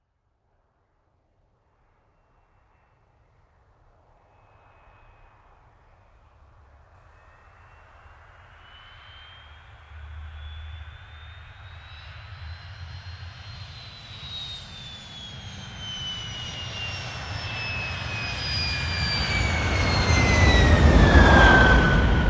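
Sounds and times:
MiG-15UTI jet landing: 7.2 - 22.2.

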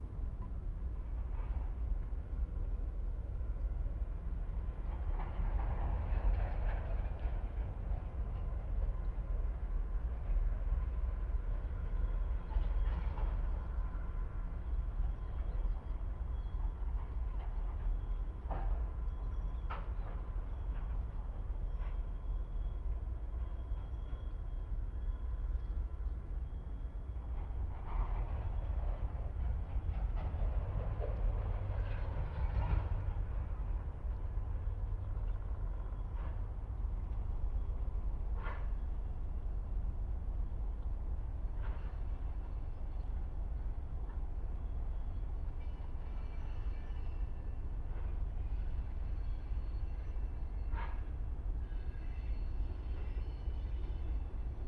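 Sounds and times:
train passing by a harbor mole: 0.0 - 54.6.

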